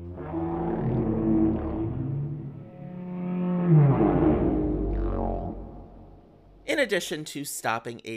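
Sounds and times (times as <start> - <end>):
low drawn-out whale calls: 0.0 - 6.3
speech: 6.7 - 8.1.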